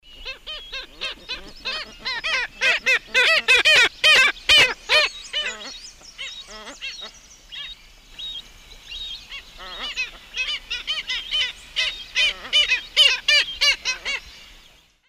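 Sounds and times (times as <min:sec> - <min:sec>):
Rynchops niger pair calling in the Eastern Lowlands of South America: 0:00.1 - 0:14.6.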